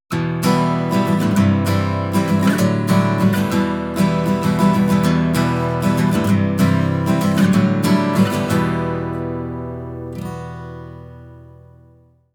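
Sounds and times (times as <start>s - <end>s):
music in a minor key: 0.1s - 12.1s.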